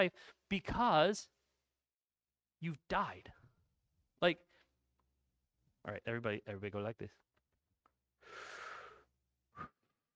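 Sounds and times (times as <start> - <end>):
speech: 0.0 - 1.4, 2.6 - 3.4, 4.2 - 4.5, 5.8 - 7.2
deep breath in through the mouth and sharp exhale: 8.2 - 10.0.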